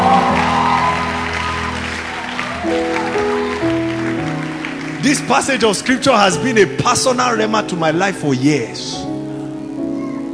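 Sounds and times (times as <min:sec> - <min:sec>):
congregation clapping steadily: 0:00.0 - 0:06.7
sustained keyboard chords: 0:00.0 - 0:10.3
speech: 0:05.1 - 0:09.1.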